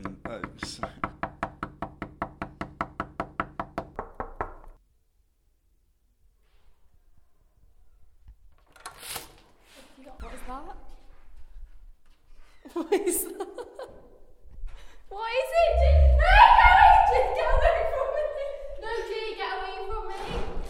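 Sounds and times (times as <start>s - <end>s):
knocking on doors: 0.0s - 4.8s
voices: 15.2s - 20.2s.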